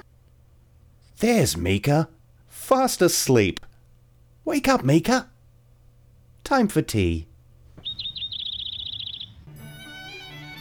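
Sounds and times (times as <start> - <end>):
speech: 1.2 - 3.7, 4.4 - 5.3, 6.4 - 7.3
small nectar-eating bird chirping: 7.8 - 10.5.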